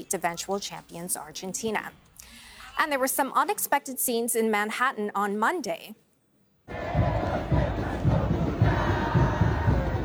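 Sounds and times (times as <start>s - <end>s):
speech: 0.0s - 6.0s
large crowd of football fans chanting and cheering outdoors: 6.7s - 10.0s.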